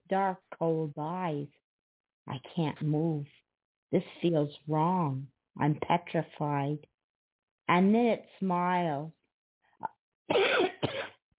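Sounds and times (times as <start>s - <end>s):
speech: 0.1s - 1.6s, 2.2s - 6.9s, 7.7s - 9.2s, 9.8s - 10.6s
person coughing: 10.3s - 11.2s.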